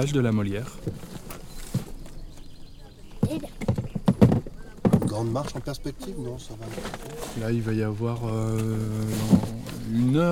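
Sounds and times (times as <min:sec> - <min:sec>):
speech: 0:00.0 - 0:01.1, 0:05.2 - 0:10.3
faint voices murmuring: 0:00.0 - 0:10.3
horses' hooves clip-clopping: 0:00.6 - 0:06.2.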